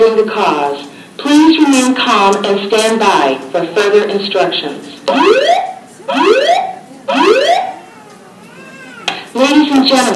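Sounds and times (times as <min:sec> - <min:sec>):
speech: 0:00.0 - 0:07.7, 0:09.3 - 0:10.1
building alarm with rising whoops: 0:05.1 - 0:07.8.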